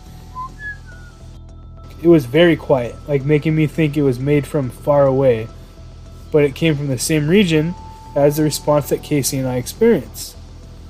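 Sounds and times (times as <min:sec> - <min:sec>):
person whistling low-high-low tones by a car near a forest: 0:00.3 - 0:01.2
speech: 0:02.0 - 0:05.6, 0:06.3 - 0:10.4.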